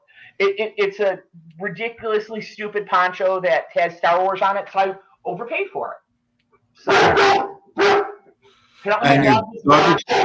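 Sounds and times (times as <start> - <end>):
speech: 0.4 - 6.0, 6.8 - 8.0, 8.8 - 10.2
upset dog barking: 6.9 - 8.3, 9.8 - 10.2.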